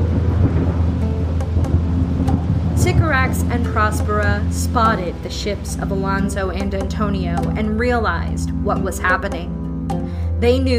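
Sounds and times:
low rumbling thunder in a tempest over a small island: 0:00.0 - 0:04.9
dense hiss of heavy rain in a tempest over a small island: 0:00.0 - 0:08.2
speech: 0:03.2 - 0:10.7.

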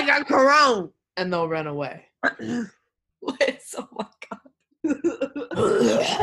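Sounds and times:
speech: 0:00.2 - 0:06.2
person faking a cough with their voice: 0:02.2 - 0:02.8, 0:05.2 - 0:06.2.

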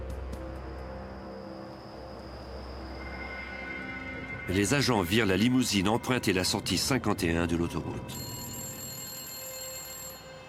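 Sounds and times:
speech: 0:04.5 - 0:08.4
telephone ringing with an electronic tone: 0:08.1 - 0:10.4.

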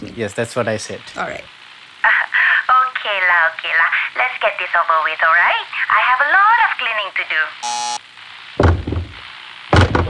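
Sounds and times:
speech: 0:00.2 - 0:01.6, 0:03.1 - 0:08.0
heavy wooden thuds against a stuck door being forced: 0:08.6 - 0:09.2, 0:09.8 - 0:10.0.

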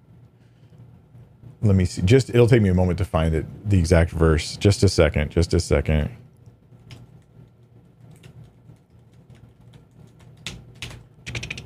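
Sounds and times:
speech: 0:01.6 - 0:06.3
typing on a computer keyboard: 0:06.8 - 0:11.6.

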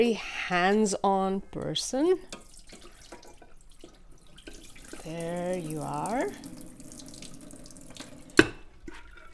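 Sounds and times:
speech: 0:00.0 - 0:02.8, 0:05.0 - 0:06.6
water splashing into a pot: 0:02.2 - 0:09.3.

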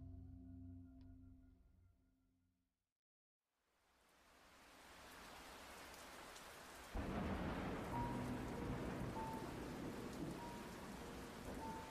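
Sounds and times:
heavy continuous rain: 0:03.9 - 0:11.8
deep rolling thunder: 0:06.9 - 0:11.8.

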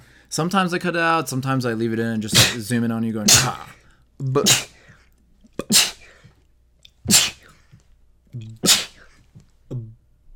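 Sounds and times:
speech: 0:00.3 - 0:04.7
person sneezing: 0:02.3 - 0:02.6, 0:03.3 - 0:03.8, 0:04.4 - 0:06.4, 0:07.0 - 0:07.8, 0:08.4 - 0:09.4.

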